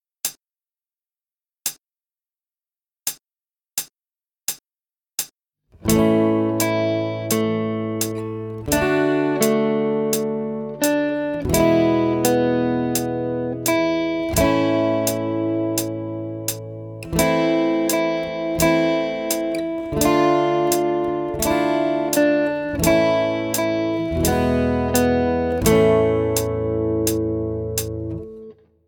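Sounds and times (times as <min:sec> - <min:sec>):
fast guitar playing on three strings: 0:05.8 - 0:28.6.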